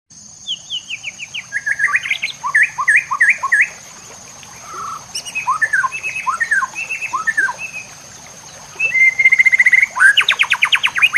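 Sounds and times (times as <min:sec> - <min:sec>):
white-rumped shama singing: 0:00.4 - 0:03.8, 0:04.6 - 0:11.1.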